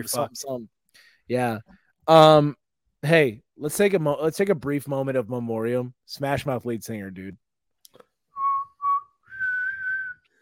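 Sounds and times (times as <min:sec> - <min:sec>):
speech: 0:00.0 - 0:08.0
person whistling a short pop melody: 0:08.4 - 0:10.3.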